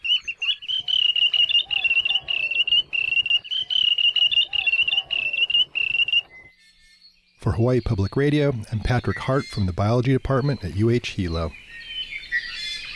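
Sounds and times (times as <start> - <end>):
wandering tattler alarm call: 0.0 - 6.5
speech: 7.5 - 11.8.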